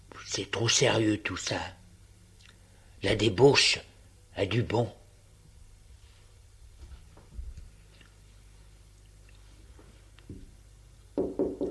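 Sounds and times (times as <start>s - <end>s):
speech: 0.3s - 1.8s, 3.0s - 5.0s
shuffling: 5.9s - 8.7s, 9.4s - 10.5s
knocking on a door: 11.2s - 11.6s.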